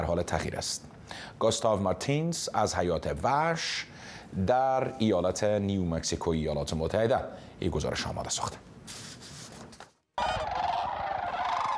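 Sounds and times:
speech: 0:00.0 - 0:09.0
sandhill cranes and snow geese calling at Bosque del Apache in New Mexico: 0:10.2 - 0:11.7.

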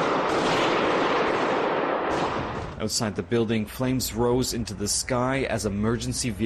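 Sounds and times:
heavy gunfire echoing through a large indoor space: 0:00.0 - 0:02.8
speech: 0:02.8 - 0:06.4.

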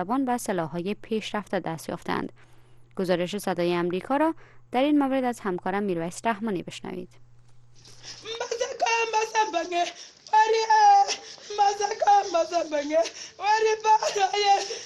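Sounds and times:
speech: 0:00.0 - 0:07.2, 0:07.8 - 0:14.8
62-year-old woman crying: 0:08.0 - 0:14.8.

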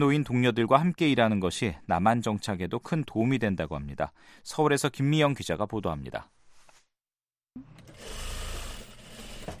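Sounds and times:
speech: 0:00.0 - 0:06.4, 0:07.6 - 0:08.2
sewing machines running in small garment factory: 0:07.8 - 0:09.5.

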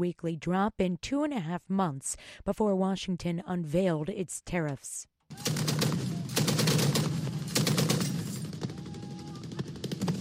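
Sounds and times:
speech: 0:00.0 - 0:05.6
heavy machine gun bursts fired by pro-government forces near Hodeida, Yemen: 0:05.3 - 0:10.1.

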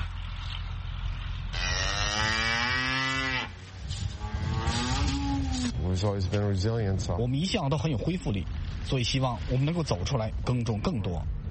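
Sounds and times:
steady low engine rumble: 0:00.0 - 0:11.4
farm cattle mooing loudly: 0:01.5 - 0:05.8
speech: 0:06.0 - 0:11.4.

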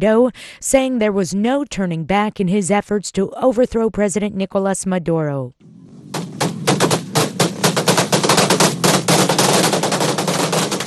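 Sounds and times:
speech: 0:00.0 - 0:05.8
rapid gunfire bursts during street protest in Caracas Venezuela: 0:05.9 - 0:10.8.

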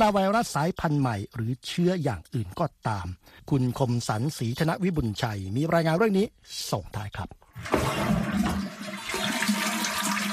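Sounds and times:
speech: 0:00.0 - 0:08.6
toilet flushing: 0:07.5 - 0:10.3.

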